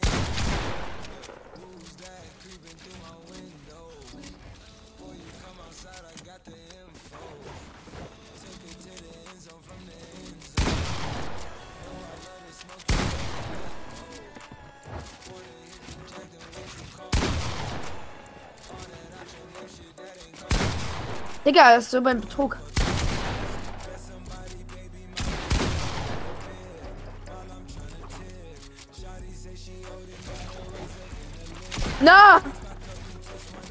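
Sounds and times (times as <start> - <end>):
pump shotgun shots in a video game: 0.0 - 2.5, 10.6 - 14.6, 16.1 - 19.8, 20.4 - 21.8, 22.6 - 24.0, 25.2 - 26.8, 30.1 - 32.7
video game gunfire: 0.0 - 3.1, 8.2 - 24.4, 25.2 - 26.9
speech: 21.5 - 22.6.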